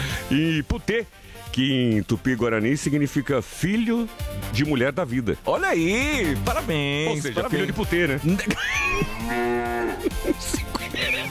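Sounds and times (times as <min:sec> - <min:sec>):
speech: 0:00.3 - 0:10.6
laughter: 0:07.1 - 0:11.2
cow mooing and lowing: 0:08.9 - 0:10.2.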